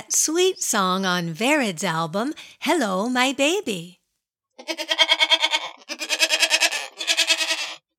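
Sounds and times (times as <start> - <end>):
speech: 0.1 - 4.0, 4.6 - 5.0
goats bleating with a wavering tremolo: 4.6 - 7.8.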